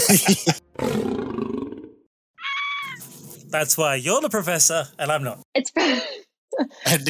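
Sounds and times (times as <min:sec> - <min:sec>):
laughter: 0:00.0 - 0:00.6, 0:02.9 - 0:06.2
speech: 0:00.1 - 0:01.2, 0:03.5 - 0:07.0
saber-toothed tiger roar sound effect: 0:00.8 - 0:02.0.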